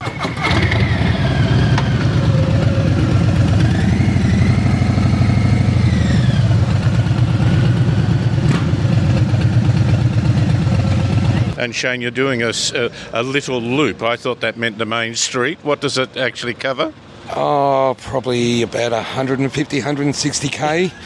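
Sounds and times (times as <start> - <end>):
Harley-Davidson motorcycle engine idling at a fuel stop: 0.4 - 11.6
speech: 11.6 - 21.0.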